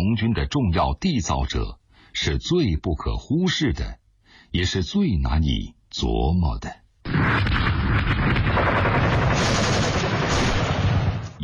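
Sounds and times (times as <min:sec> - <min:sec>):
speech: 0:00.1 - 0:09.7
deep booms of artillery: 0:07.1 - 0:11.4
rumbling gunfire with bursts of rapid shots: 0:07.1 - 0:11.4.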